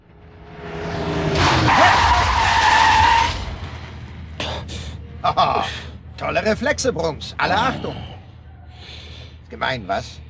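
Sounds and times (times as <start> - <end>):
car racing up from behind on a quiet street: 0.0 - 4.4
car tires screeching: 0.0 - 8.3
speech: 6.4 - 8.1, 9.5 - 10.2.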